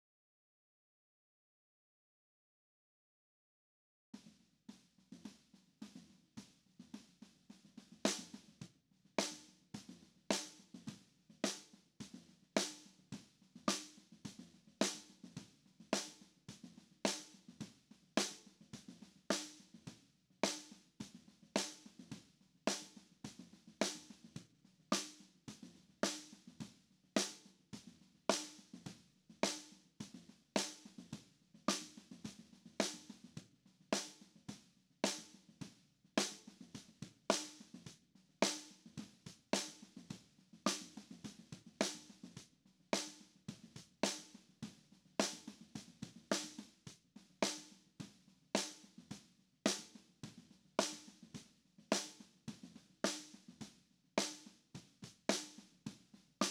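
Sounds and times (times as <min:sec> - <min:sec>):
snare drum recorded from the bottom: 0:04.2 - 0:56.4.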